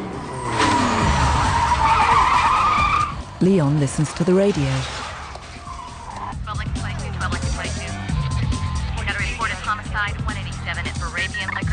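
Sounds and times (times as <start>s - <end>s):
racing video game tire skids screeching: 0.0s - 6.6s, 7.4s - 9.8s
racing video game engine revving: 0.0s - 11.7s
speech: 3.4s - 5.0s.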